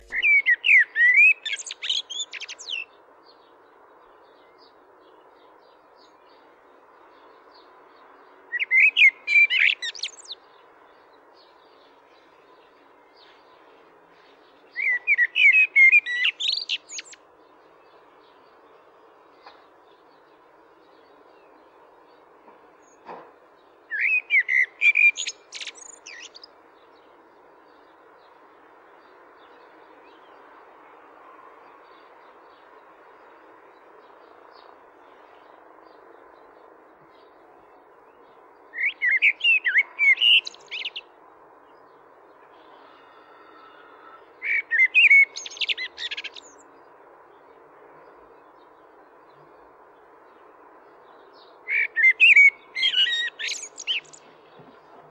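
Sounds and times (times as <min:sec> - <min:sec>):
blackbird singing: 0:00.0 - 0:03.0, 0:08.4 - 0:10.5, 0:14.5 - 0:17.2, 0:23.8 - 0:26.5, 0:38.7 - 0:41.1, 0:42.5 - 0:46.7, 0:51.1 - 0:55.0.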